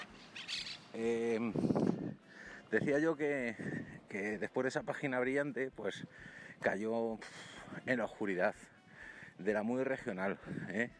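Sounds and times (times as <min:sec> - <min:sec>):
louder harsher bird call: 0:00.0 - 0:01.0
small birds chirping: 0:00.0 - 0:01.2
speech: 0:00.9 - 0:08.8, 0:09.4 - 0:10.9.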